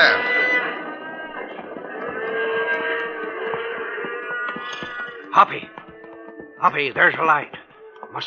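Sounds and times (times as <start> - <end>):
herd of cattle lowing together: 0.0 - 6.2
speech: 5.4 - 5.8, 6.6 - 8.2.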